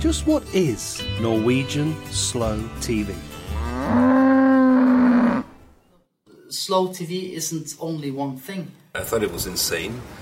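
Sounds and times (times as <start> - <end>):
speech: 0.0 - 3.3, 6.7 - 10.2
cow mooing: 3.4 - 5.6.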